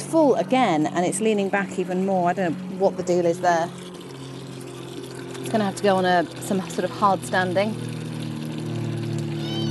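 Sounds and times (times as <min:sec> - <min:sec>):
aeroplane passing overhead: 0:00.0 - 0:09.6
water butt being emptied: 0:00.0 - 0:09.6
speech: 0:00.1 - 0:03.8, 0:05.5 - 0:07.9
cat meowing: 0:09.4 - 0:09.6.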